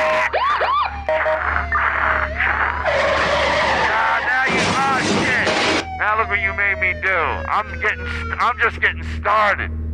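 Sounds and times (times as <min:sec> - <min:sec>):
tires squealing from a skidding car: 0:00.0 - 0:08.3
car crash crunching: 0:02.8 - 0:05.9
speech: 0:07.3 - 0:09.8.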